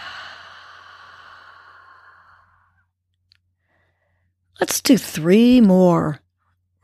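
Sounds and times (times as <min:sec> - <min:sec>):
long breathy exhale through the mouth: 0:00.0 - 0:02.7
speech: 0:04.6 - 0:06.2.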